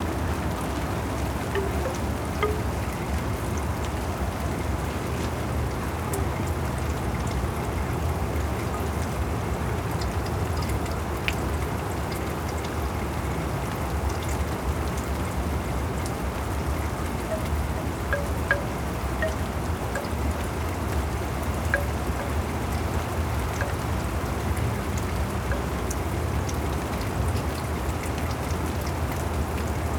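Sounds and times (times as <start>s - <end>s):
rain in Oregon: 0.0s - 29.9s
large bamboo wind chime: 1.5s - 2.9s, 17.3s - 20.4s, 21.7s - 22.5s, 23.6s - 24.0s.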